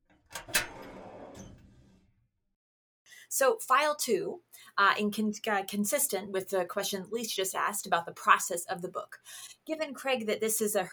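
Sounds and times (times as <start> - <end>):
wooden drawer opening and closing: 0.1 - 2.1
speech: 3.3 - 10.9.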